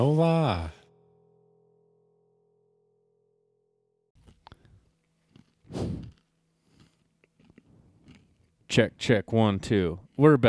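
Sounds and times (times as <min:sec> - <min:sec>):
speech: 0:00.0 - 0:00.8, 0:08.7 - 0:10.4
chewing food near the microphone: 0:04.2 - 0:08.7.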